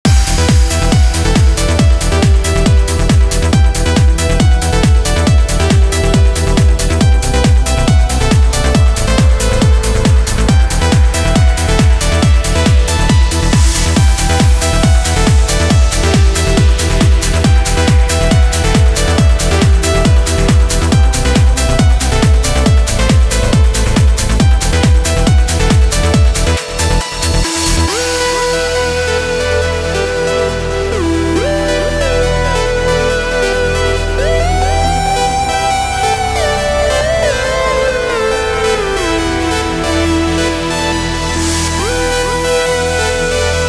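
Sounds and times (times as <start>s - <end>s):
complete music mix in E minor: 0.0s - 43.6s.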